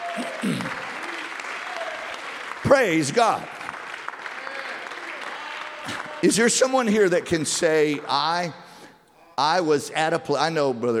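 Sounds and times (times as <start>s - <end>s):
church congregation clapping hands: 0.0s - 8.7s
speech: 0.2s - 0.8s, 2.7s - 3.6s, 6.2s - 8.6s, 9.4s - 10.9s.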